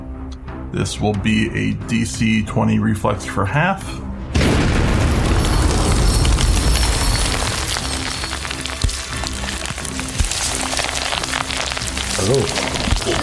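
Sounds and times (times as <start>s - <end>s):
speech: 0.7s - 4.1s, 12.2s - 13.2s
loud deep explosion sound effect for a spell in a tabletop role-playing game: 4.2s - 8.3s
crackling hissing debris-like patter: 4.8s - 13.2s.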